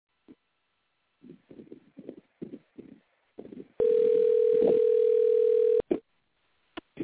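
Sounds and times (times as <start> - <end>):
phone line clicks: 3.8 - 5.9
telephone dial tone after a caller hung up on a live radio call: 3.8 - 5.9.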